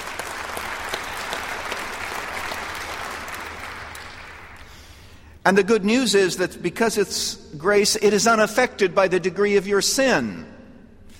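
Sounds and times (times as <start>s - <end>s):
room full of people applauding: 0.0s - 5.2s
speech: 5.5s - 10.5s.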